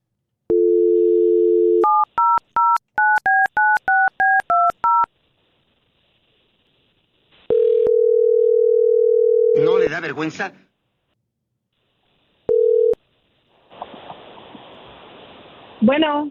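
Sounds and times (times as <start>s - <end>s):
telephone dial tone: 0.5s - 5.1s, 7.5s - 9.6s, 12.5s - 13.0s
speech: 10.0s - 10.7s, 15.8s - 16.2s.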